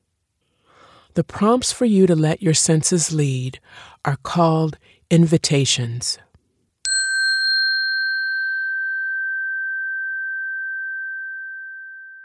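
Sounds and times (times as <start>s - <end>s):
speech: 1.2s - 6.3s
single struck chime with bright pure ringing tone: 6.9s - 12.2s.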